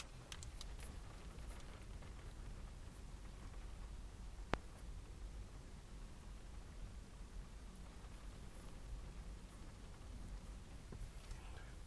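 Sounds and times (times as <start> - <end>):
rain pattering against a car window: 0.0 - 11.8.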